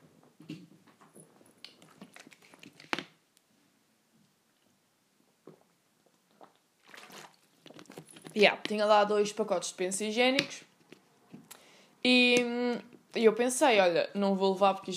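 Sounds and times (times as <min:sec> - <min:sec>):
person drinking water: 0:05.4 - 0:08.4
speech: 0:08.4 - 0:10.7, 0:12.1 - 0:12.4, 0:13.2 - 0:14.9.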